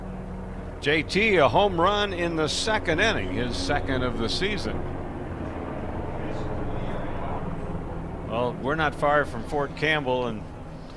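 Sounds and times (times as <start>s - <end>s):
big military helicopter flying overhead: 0.0s - 10.9s
speech: 0.8s - 4.9s, 8.4s - 10.5s
faint murmur of voices: 4.8s - 9.8s.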